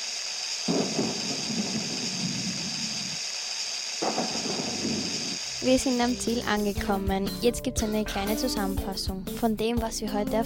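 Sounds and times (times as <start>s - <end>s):
steady hiss: 0.0s - 6.2s
thunder rumbling from approaching thunderstorm: 0.7s - 3.2s, 4.0s - 5.4s
speech: 5.6s - 10.4s.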